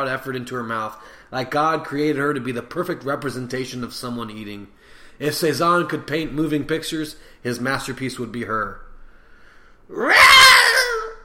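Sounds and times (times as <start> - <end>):
speech: 0.0 - 8.8, 9.9 - 10.6
cat screaming in a strained caterwaul: 9.9 - 11.2.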